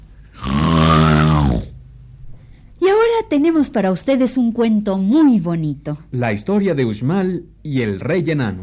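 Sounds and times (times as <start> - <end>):
man snoring loudly: 0.3 - 1.8
speech: 3.3 - 8.6.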